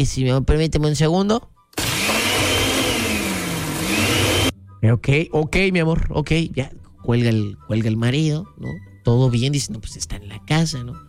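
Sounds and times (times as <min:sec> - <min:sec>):
speech: 0:00.0 - 0:01.5, 0:04.8 - 0:11.0
blender whirring: 0:01.8 - 0:04.5.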